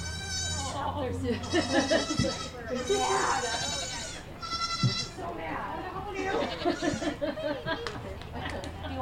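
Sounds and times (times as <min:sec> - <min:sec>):
goats and kids bleating: 0:00.0 - 0:05.3, 0:06.1 - 0:07.2
laughter: 0:00.8 - 0:03.8, 0:06.1 - 0:09.0.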